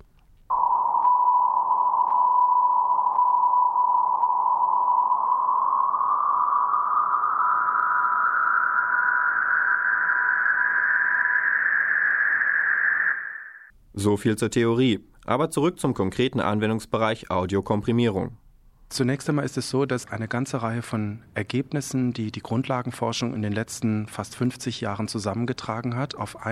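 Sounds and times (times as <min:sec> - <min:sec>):
steady pure tone: 0:00.0 - 0:13.7
loud hiss rising in pitch: 0:03.7 - 0:13.7
speech: 0:14.0 - 0:26.5.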